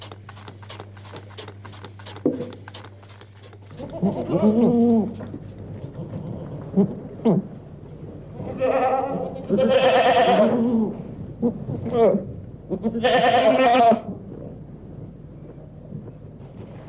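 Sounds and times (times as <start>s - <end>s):
rustling: 0.0s - 7.0s
low steady hum: 0.0s - 16.8s
goats bleating: 3.7s - 5.3s, 8.4s - 10.8s, 12.7s - 14.0s.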